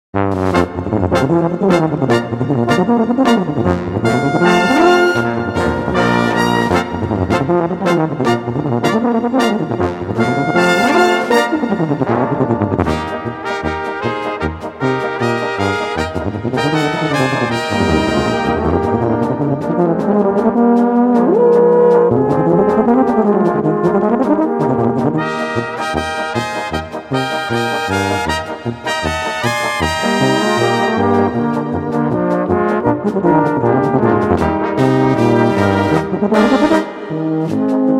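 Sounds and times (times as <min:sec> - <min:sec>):
tuba playing: 0:00.2 - 0:37.9.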